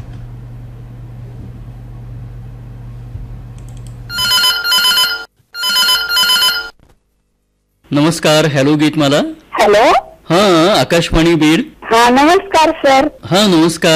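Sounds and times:
low steady hum: 0:00.0 - 0:13.9
telephone bell ringing on a radio phone-in: 0:04.1 - 0:06.8
speech: 0:07.9 - 0:13.9.

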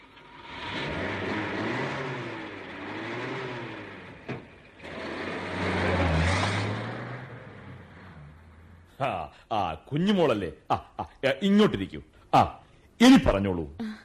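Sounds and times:
car engine revving as the car pulls away: 0:00.0 - 0:09.0
speech: 0:09.0 - 0:14.0.

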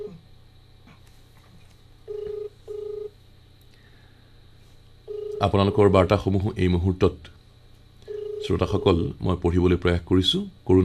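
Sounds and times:
mobile phone ringback tones of a call being connected: 0:02.1 - 0:03.1, 0:05.1 - 0:05.5, 0:08.1 - 0:08.6
speech: 0:05.4 - 0:07.4, 0:08.5 - 0:10.8.

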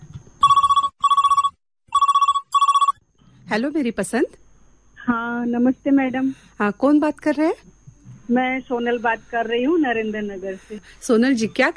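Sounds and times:
telephone ringing for an incoming call to a radio programme: 0:00.4 - 0:03.0
speech: 0:03.5 - 0:04.4, 0:05.1 - 0:07.7, 0:08.3 - 0:11.7.

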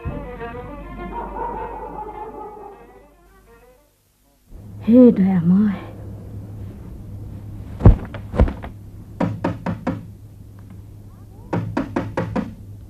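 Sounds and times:
low steady hum: 0:00.0 - 0:12.8
speech: 0:04.9 - 0:05.9
knocking on a door: 0:07.8 - 0:10.1, 0:11.5 - 0:12.6.

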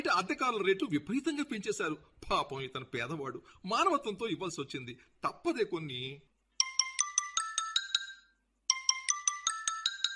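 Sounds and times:
speech: 0:00.2 - 0:06.3
electronic telephone ringing: 0:06.6 - 0:10.1.

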